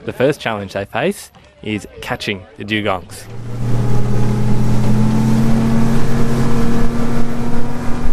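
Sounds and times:
speech: 0.0 - 3.7
wind rushing: 3.1 - 7.4
rush of water: 3.1 - 7.9
motorboat engine droning as boat is launched: 3.1 - 8.1.

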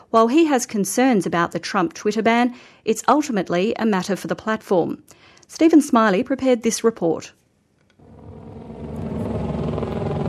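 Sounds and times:
speech: 0.1 - 7.4
helicopter hovering overhead above the streets of Washington D.C.: 8.0 - 10.2.

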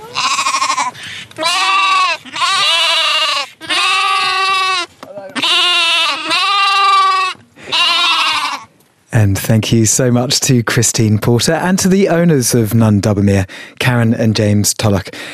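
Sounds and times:
sheep bleating on a rural Australian property: 0.0 - 8.7
speech: 9.2 - 15.3.

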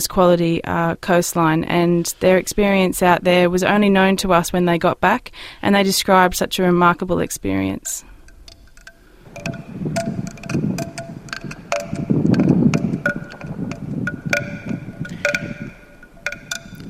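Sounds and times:
speech: 0.0 - 8.1, 9.4 - 10.2
wind rushing and gusting: 8.2 - 16.8.

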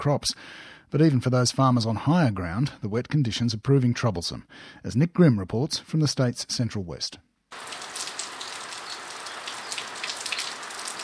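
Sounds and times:
speech: 0.0 - 7.9
steady rain falling: 7.5 - 11.0.

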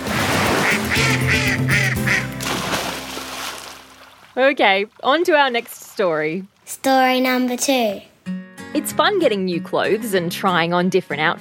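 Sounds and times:
duck quacking: 0.0 - 2.4
speech: 4.4 - 11.3.

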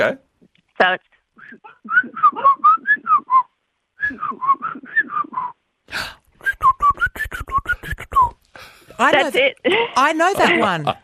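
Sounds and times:
speech: 0.0 - 0.2, 0.8 - 2.8, 4.1 - 11.0
person whistling an imitation of a bird's call: 1.9 - 5.6, 6.4 - 8.4.

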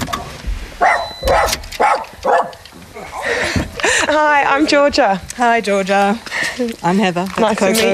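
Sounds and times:
several dogs barking on the Atherton Tablelands: 0.1 - 2.6
speech: 4.1 - 7.9.

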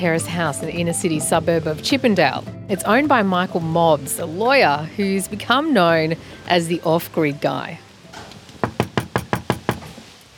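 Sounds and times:
speech: 0.0 - 7.8
knocking on the wooden front door of a terrace house in Chippendale: 8.6 - 9.9.

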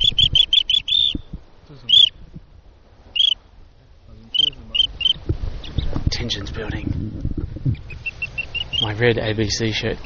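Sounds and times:
flock of birds flying past chirping: 0.0 - 2.3, 3.1 - 3.4, 4.1 - 6.9, 7.6 - 10.0
speech: 6.3 - 7.3, 8.9 - 10.0.

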